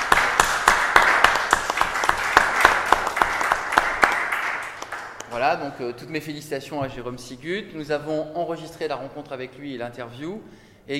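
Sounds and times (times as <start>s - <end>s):
audience applauding: 0.0s - 5.4s
speech: 5.4s - 10.9s.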